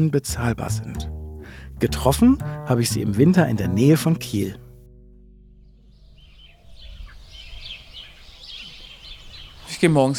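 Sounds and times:
speech: 0.0s - 1.2s, 1.8s - 4.6s, 9.8s - 10.1s
low rumbling background: 0.2s - 7.4s
birds chirping outdoors: 5.4s - 10.1s.

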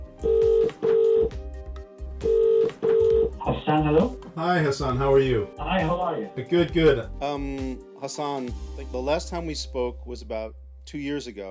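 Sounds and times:
electronic telephone keypad dialing tones: 0.2s - 1.4s, 2.2s - 3.4s
speech: 3.8s - 11.4s.

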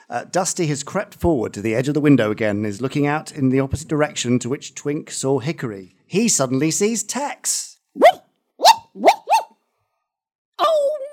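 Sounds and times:
speech: 0.1s - 8.1s
dog barking: 8.0s - 9.6s.

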